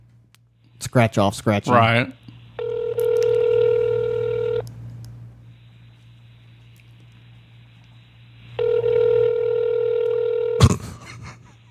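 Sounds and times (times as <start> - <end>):
speech: 0.9 - 2.2
phone line ringing heard through the earpiece: 2.6 - 4.6, 8.6 - 10.6.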